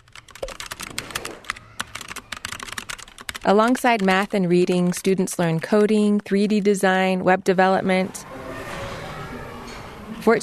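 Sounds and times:
student typing rapidly on a Logitech computer keyboard at a school: 0.0 - 7.1
speech: 3.4 - 8.2, 10.2 - 10.4.

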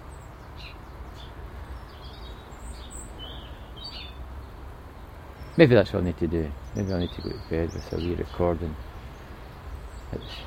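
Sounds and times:
a few birds chirping and twittering: 0.0 - 10.4
rushing outdoor hiss: 0.0 - 10.4
speech: 5.6 - 8.9, 10.1 - 10.4.

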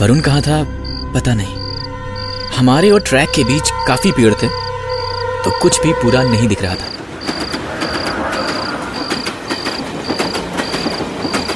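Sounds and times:
speech: 0.0 - 1.6, 2.5 - 4.6, 5.4 - 7.0
insects chirping: 0.0 - 11.5
train passing in the distance beyond trees: 0.0 - 11.5
faint rhythmic clacks of passing train: 6.9 - 11.5.

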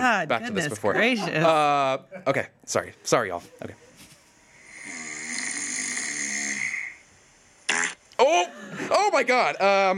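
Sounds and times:
speech: 0.0 - 3.8, 8.2 - 9.9
rasping snore: 4.6 - 7.0.

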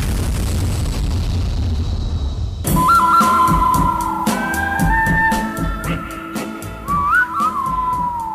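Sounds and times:
low rumbling noise: 0.0 - 6.1
person attempting to whistle: 2.7 - 8.3.

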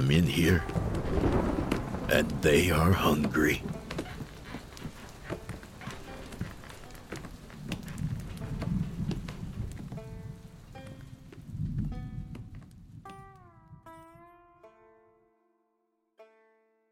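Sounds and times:
steady rain: 0.0 - 13.4
speech: 0.1 - 1.4, 2.1 - 3.7.

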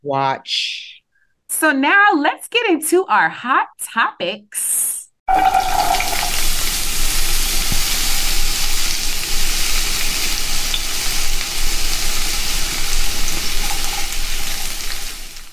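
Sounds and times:
speech: 0.0 - 0.8, 1.6 - 6.1
sizzling: 5.3 - 15.5.

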